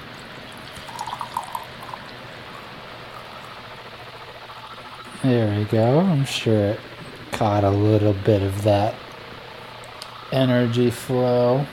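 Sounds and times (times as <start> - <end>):
steady hiss: 0.0 - 11.7
wine pouring into a glass: 0.1 - 3.6
speech: 5.2 - 9.1, 10.3 - 11.7.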